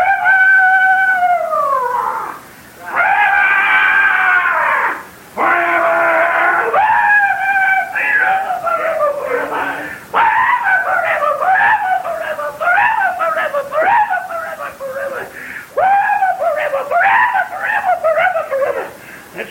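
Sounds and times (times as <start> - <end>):
eerie screams and wails as demons shrieking in hell: 0.0 - 18.9.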